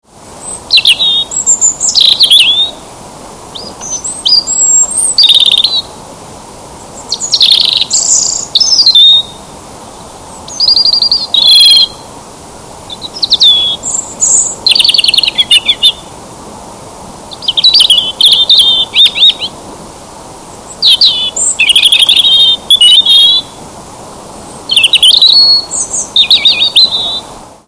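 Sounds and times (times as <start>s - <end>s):
robin: 0.4s - 2.8s, 3.6s - 6.0s, 7.0s - 12.1s, 12.9s - 16.1s, 17.3s - 19.6s, 20.7s - 23.6s, 24.6s - 27.3s.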